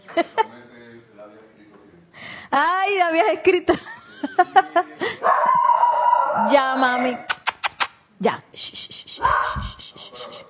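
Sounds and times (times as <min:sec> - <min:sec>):
speech: 0:00.2 - 0:00.5, 0:02.5 - 0:05.2, 0:06.4 - 0:07.3, 0:08.2 - 0:10.3
laughter: 0:03.7 - 0:05.3
dog barking: 0:05.2 - 0:07.3, 0:09.2 - 0:10.4
dog howling: 0:05.3 - 0:07.3.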